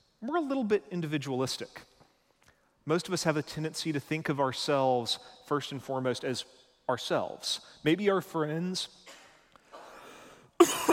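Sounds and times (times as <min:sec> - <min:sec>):
speech: 0:00.2 - 0:01.9, 0:02.9 - 0:09.2
person coughing in an audience: 0:09.0 - 0:10.0, 0:10.6 - 0:10.9.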